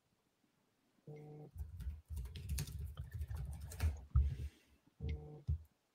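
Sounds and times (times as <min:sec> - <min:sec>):
keyboard typing of a message: 0:01.2 - 0:04.1.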